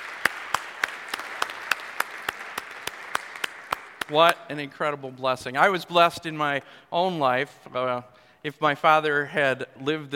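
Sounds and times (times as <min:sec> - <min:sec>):
audience applause: 0:00.0 - 0:04.3
sharp evenly spaced claps: 0:00.0 - 0:04.6
speech: 0:04.1 - 0:10.1.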